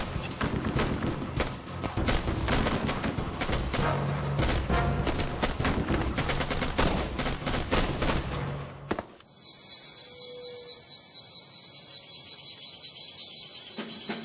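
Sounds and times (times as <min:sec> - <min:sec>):
rapid enemy gunfire bursts: 0:00.0 - 0:08.5
high-pitched ringing drone: 0:09.3 - 0:14.2.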